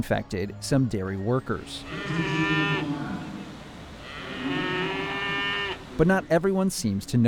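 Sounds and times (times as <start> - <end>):
speech: 0.0 - 2.9, 6.0 - 7.2
dairy cows mooing in a cattle barn at the Indiana State Fair: 1.7 - 6.1.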